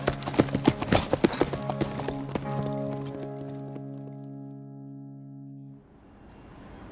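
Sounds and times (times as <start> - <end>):
horse hooves clip-clopping in a loping gait: 0.0 - 4.3.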